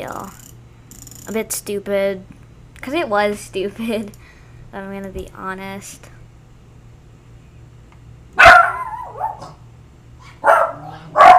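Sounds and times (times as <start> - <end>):
speech: 0.0 - 0.4, 1.3 - 6.1
dog barking: 8.4 - 9.6, 10.2 - 11.3.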